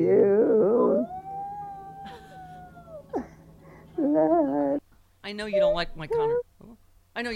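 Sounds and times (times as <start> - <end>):
person imitating a mini schnauzer howling: 0.1 - 3.3, 4.0 - 4.8
speech: 5.4 - 6.5, 7.2 - 7.3.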